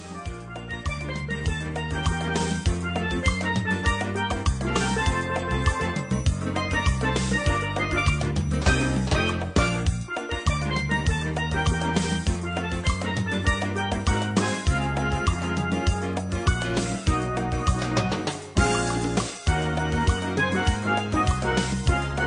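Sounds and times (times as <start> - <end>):
highlife music: 0.0 - 22.2.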